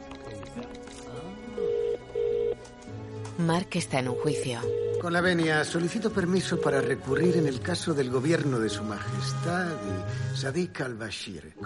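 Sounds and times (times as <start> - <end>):
mobile phone dialing tones: 1.6 - 2.6, 4.1 - 5.5, 6.2 - 7.6
speech: 3.4 - 11.6.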